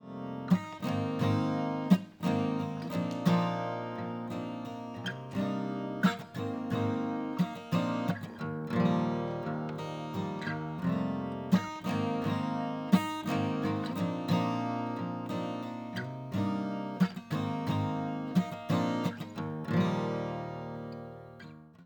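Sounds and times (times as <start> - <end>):
acoustic guitar: 0.0 - 21.8.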